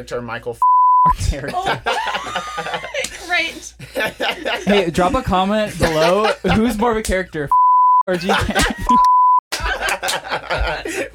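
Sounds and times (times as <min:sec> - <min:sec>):
speech: 0:00.0 - 0:09.1
high-pitched censor bleep over a spoken last name: 0:00.6 - 0:01.1, 0:07.5 - 0:08.1, 0:08.9 - 0:09.4
lively laughter and chuckling: 0:01.2 - 0:07.0, 0:08.1 - 0:11.1.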